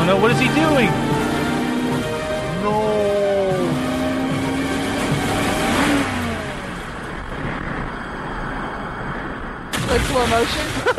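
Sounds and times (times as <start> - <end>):
speech: 0.0 - 1.2, 2.6 - 3.0, 9.9 - 10.9
car engine revving as the car drives off a cliff: 0.0 - 10.9.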